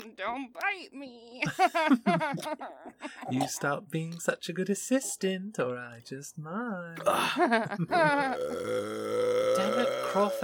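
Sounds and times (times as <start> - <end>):
speech: 0.2 - 10.4
laughter: 1.4 - 3.4, 7.1 - 8.5
loud drawn-out belch: 7.0 - 7.4, 8.2 - 10.4.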